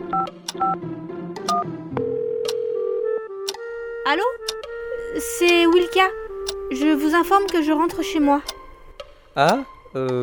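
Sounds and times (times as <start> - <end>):
telephone keypad dual-pitch beeps while placing a call: 0.1 - 0.8
speech: 0.1 - 2.2, 4.0 - 8.6, 9.4 - 10.2
telephone ringing tone: 2.0 - 3.2.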